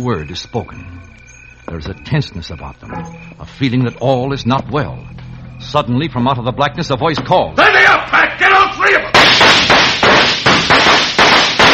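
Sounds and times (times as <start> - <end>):
speech: 0.0 - 8.5
gunshots from more than one gun: 9.1 - 11.7.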